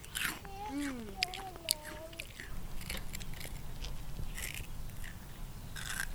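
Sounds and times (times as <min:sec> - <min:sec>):
crunching bite of crispy fried dough made with flowers and orange: 0:00.0 - 0:06.1
person humming appreciatively: 0:00.4 - 0:02.3.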